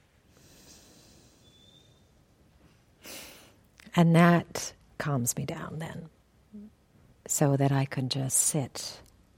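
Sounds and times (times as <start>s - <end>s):
alternate nostril breathing through the nose: 0.3s - 1.8s
speech: 4.0s - 9.1s.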